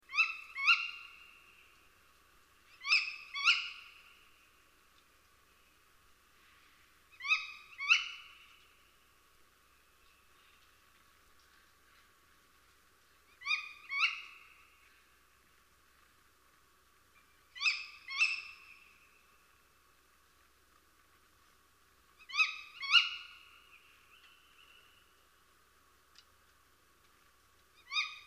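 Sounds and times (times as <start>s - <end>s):
tawny owl song: 0.1s - 1.1s, 2.8s - 4.0s, 7.2s - 8.5s, 13.4s - 14.7s, 17.6s - 18.9s, 22.2s - 25.0s, 27.8s - 28.2s.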